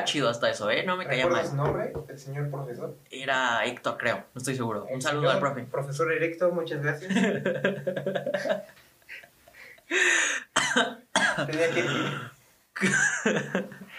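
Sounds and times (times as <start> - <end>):
speech: 0.0 - 9.2, 9.9 - 13.8
laughter: 7.0 - 9.8, 11.4 - 12.1, 12.8 - 13.9
person coughing from choking on saliva: 10.6 - 12.4.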